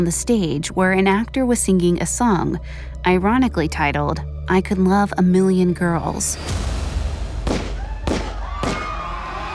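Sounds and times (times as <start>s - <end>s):
speech: 0.0s - 6.8s
gunshots in a darkened theater: 7.4s - 9.1s.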